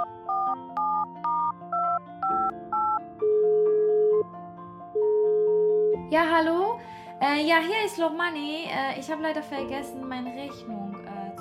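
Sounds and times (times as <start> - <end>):
telephone call ringing tones: 0.0 - 4.2, 5.0 - 5.9
telephone dialling tones: 0.0 - 4.2
speech: 6.1 - 10.8.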